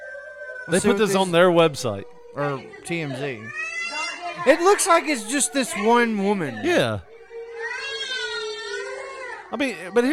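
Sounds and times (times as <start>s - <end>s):
child screaming and crying: 0.0s - 1.2s, 3.4s - 9.5s
speech: 0.7s - 3.7s, 4.4s - 7.1s, 9.5s - 10.1s.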